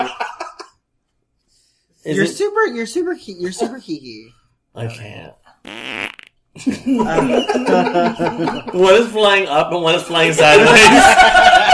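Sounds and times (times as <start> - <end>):
speech: 0.0 - 0.2, 2.0 - 6.0, 6.6 - 11.6
laughter: 0.0 - 0.8, 6.6 - 9.3, 10.3 - 11.7
fart sound effect from a button: 5.6 - 6.4.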